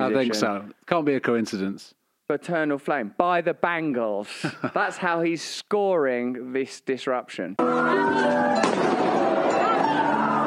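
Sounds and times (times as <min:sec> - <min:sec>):
speech: 0:00.1 - 0:08.8
sharp loud bang, gunshot or firecracker: 0:08.6 - 0:09.3.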